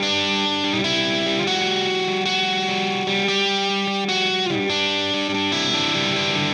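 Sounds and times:
indie rock lead guitar riff: 0.0s - 6.5s.

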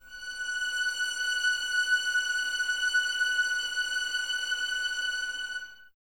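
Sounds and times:
expressive violin string ensemble playing F sharp 6: 0.0s - 5.9s.

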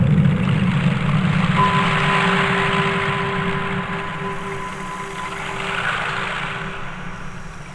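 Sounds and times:
ethereal ambient texture: 0.2s - 7.7s
bell in a cave: 1.5s - 7.7s.

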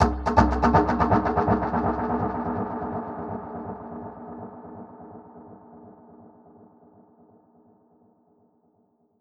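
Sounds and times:
dub percussion hit: 0.0s - 2.2s.

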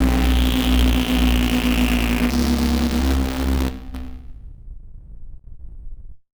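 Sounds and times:
malfunctioning synthesizer: 0.0s - 4.3s.

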